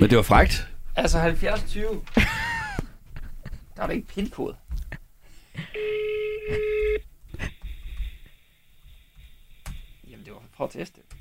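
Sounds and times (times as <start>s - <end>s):
speech: 0.0s - 2.4s, 3.8s - 4.6s, 5.6s - 7.1s, 10.6s - 11.0s
outgoing phone call ringback tone beep: 5.7s - 7.0s.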